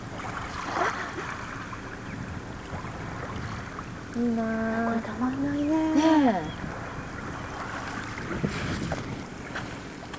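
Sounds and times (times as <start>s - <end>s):
ocean waves: 0.0s - 10.1s
speech: 4.2s - 6.5s.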